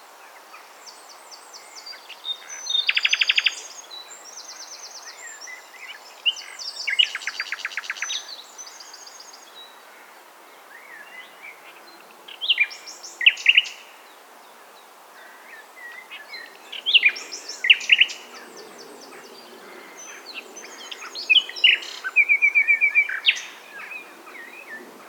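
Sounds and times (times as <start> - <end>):
Common nightingale song: 0.6 - 9.9, 10.6 - 25.0.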